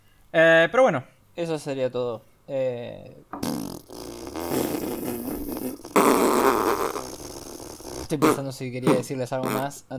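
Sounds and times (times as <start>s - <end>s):
speech: 0.3s - 3.7s, 8.1s - 9.9s
person blowing raspberries with the mouth imitating a fart: 3.4s - 9.7s.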